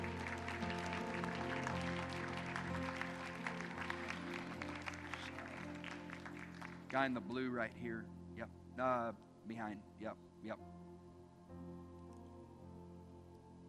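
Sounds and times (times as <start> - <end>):
audience clapping: 0.0 - 7.3
speech: 6.9 - 10.8.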